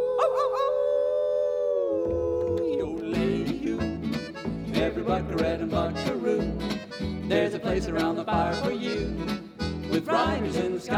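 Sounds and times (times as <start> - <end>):
wolf-like howl from a human voice: 0.0 - 2.6
percussion: 2.0 - 10.9
strummed instruments: 3.2 - 10.9
speech: 5.1 - 10.9.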